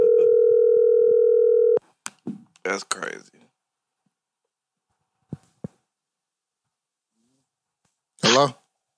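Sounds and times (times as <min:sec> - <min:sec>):
phone ringing tone as a steady electronic hum: 0:00.0 - 0:01.8
speech: 0:02.7 - 0:03.4, 0:08.3 - 0:08.6.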